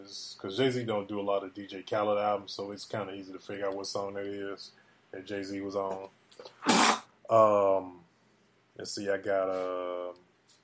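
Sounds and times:
speech: 0:00.0 - 0:08.0, 0:08.8 - 0:10.2
person sneezing: 0:06.5 - 0:07.1.

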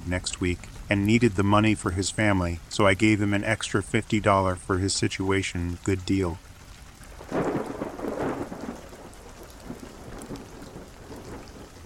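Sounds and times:
rain pattering on a surface: 0:00.0 - 0:11.8
speech: 0:00.1 - 0:06.5
deep rumble of thunder: 0:07.1 - 0:11.8.

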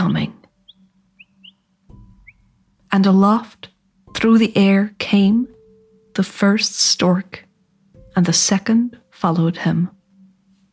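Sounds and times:
small birds twittering: 0:00.0 - 0:02.7
speech: 0:03.0 - 0:05.6, 0:06.2 - 0:07.4, 0:08.2 - 0:10.0.

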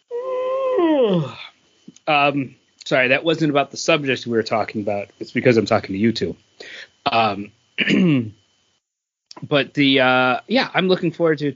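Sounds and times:
person yawning: 0:00.1 - 0:01.5
speech: 0:02.1 - 0:08.4, 0:09.4 - 0:11.5.

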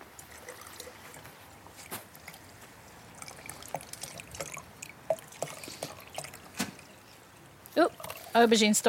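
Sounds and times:
water poured into tahini dripping and splashing: 0:00.0 - 0:08.4
speech: 0:07.8 - 0:08.8.

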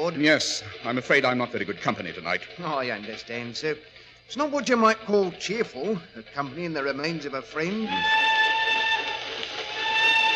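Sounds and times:
speech: 0:00.0 - 0:08.3
train whistle blowing: 0:07.8 - 0:10.3.

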